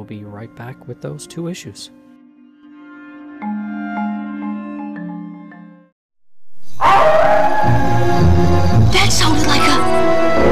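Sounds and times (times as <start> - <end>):
speech: 0.0 - 2.1, 8.9 - 10.5
loud drawn-out rough wolf howl: 6.7 - 8.5, 10.0 - 10.5
eerie sustained musical notes: 7.4 - 10.5.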